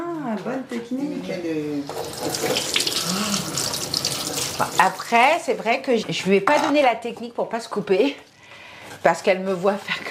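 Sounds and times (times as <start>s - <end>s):
speech: 0.2s - 3.9s, 4.6s - 8.3s, 9.0s - 10.0s
tap running cold water to soak an onion: 1.8s - 5.7s.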